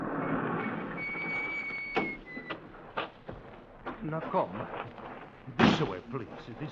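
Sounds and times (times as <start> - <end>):
side door of an abandoned barn opening with a metallic squeal: 0.1 - 2.6
speech: 4.0 - 5.0, 5.8 - 6.7.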